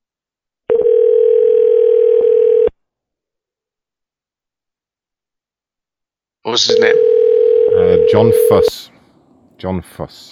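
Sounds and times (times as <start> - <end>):
telephone dial tone while placing a call: 0.7 - 2.7, 7.0 - 8.7
speech: 6.6 - 7.2, 8.0 - 8.9, 9.6 - 10.3.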